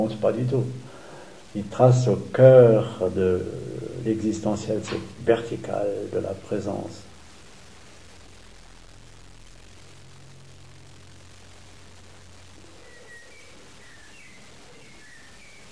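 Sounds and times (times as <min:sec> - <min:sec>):
speech: 0:00.0 - 0:00.9, 0:01.5 - 0:07.1
steady hiss: 0:00.0 - 0:15.7
faint bird chirps with short high tweets: 0:12.6 - 0:15.7.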